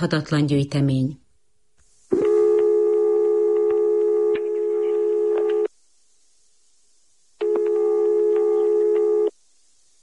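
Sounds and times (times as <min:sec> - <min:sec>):
speech: 0:00.0 - 0:01.2
telephone line tone on a call dialed to a home phone number: 0:02.1 - 0:05.7, 0:07.4 - 0:09.4.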